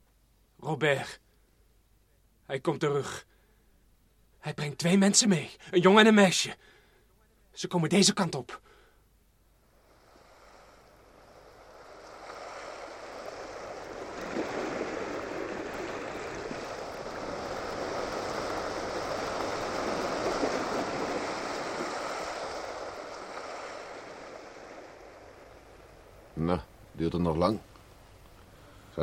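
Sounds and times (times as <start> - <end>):
speech: 0.7 - 1.2, 2.5 - 3.3, 4.4 - 6.7, 7.6 - 8.7, 26.5 - 27.7
sea waves washing onto the shore: 9.6 - 29.0.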